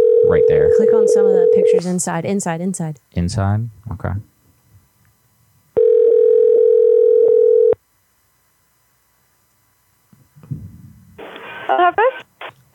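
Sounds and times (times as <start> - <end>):
telephone dial tone while connecting call: 0.0 - 1.8, 5.8 - 7.8
speech: 0.3 - 4.3, 11.7 - 12.2.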